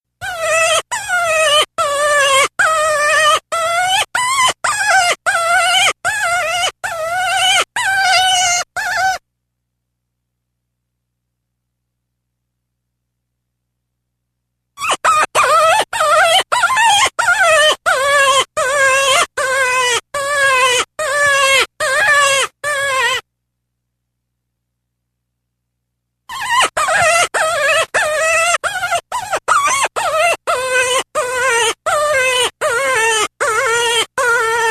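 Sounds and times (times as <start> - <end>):
cottontail rabbit: 0.0 - 9.3, 14.8 - 23.3, 26.3 - 34.6.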